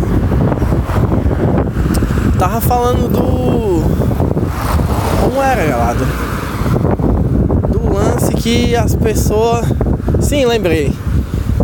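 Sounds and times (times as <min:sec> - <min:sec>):
strong wind buffeting the microphone: 0:00.0 - 0:11.6
speech: 0:02.4 - 0:04.7, 0:05.3 - 0:06.4, 0:08.4 - 0:11.0.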